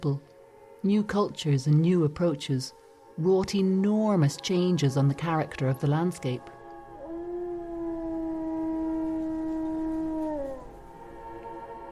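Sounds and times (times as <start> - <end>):
speech: 0.0 - 6.6
single long wolf howl: 6.6 - 11.9.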